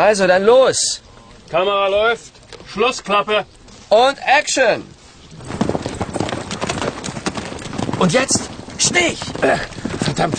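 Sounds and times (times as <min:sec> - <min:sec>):
speech: 0:00.0 - 0:05.8, 0:08.0 - 0:10.3
horses' hooves clip-clopping as riders set off: 0:02.4 - 0:10.3.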